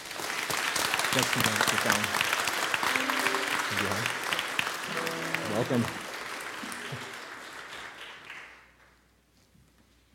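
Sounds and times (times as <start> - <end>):
audience applauding in a church: 0.0 - 9.0
speech: 1.2 - 2.3, 3.7 - 4.2, 4.9 - 6.0
brief tonal sounds: 2.9 - 4.2, 4.9 - 6.1.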